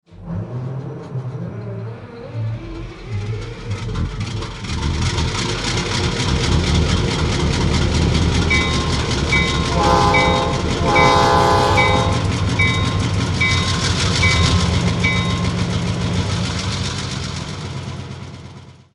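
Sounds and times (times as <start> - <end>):
EMD 645 diesel locomotive engine: 0.1 - 18.9.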